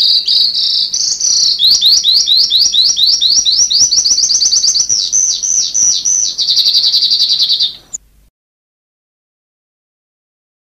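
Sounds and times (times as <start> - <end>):
sanma bird chirping and trilling: 0.0 - 8.0.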